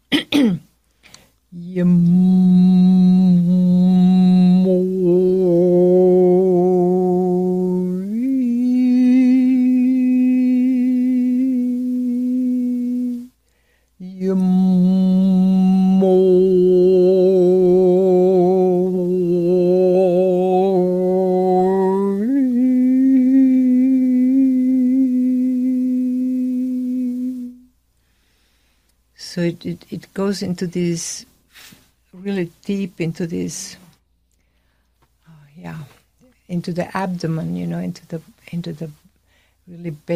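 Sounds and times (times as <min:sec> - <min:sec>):
speech: 0:01.5 - 0:02.4, 0:29.7 - 0:31.3, 0:32.2 - 0:33.8, 0:36.6 - 0:39.0, 0:39.7 - 0:40.1
deep chanted vocal tone on a sacred sound: 0:01.6 - 0:13.3, 0:14.0 - 0:27.7.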